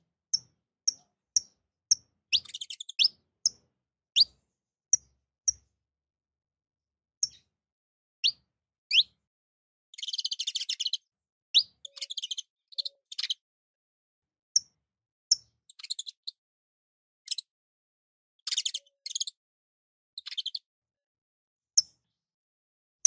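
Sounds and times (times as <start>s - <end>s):
Portuguese domestic canary singing sharp high notes, upward sweeps and rattling trills: 0.3s - 3.6s, 4.2s - 4.4s, 8.2s - 9.2s, 10.0s - 13.4s, 15.3s - 16.4s, 18.4s - 19.4s, 20.2s - 20.7s.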